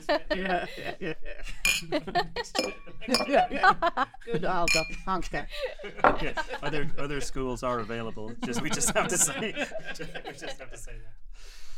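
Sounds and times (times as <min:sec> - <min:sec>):
people chuckling: 0:00.0 - 0:04.6, 0:05.5 - 0:11.1
speech: 0:00.1 - 0:11.6
glasses clinking in a toast: 0:01.6 - 0:02.0, 0:02.6 - 0:03.6, 0:04.7 - 0:05.1.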